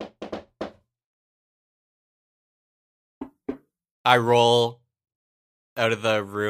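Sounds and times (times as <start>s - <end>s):
light knocking on a door: 0.0s - 0.8s, 3.2s - 3.6s
speech: 4.0s - 4.8s, 5.8s - 6.4s.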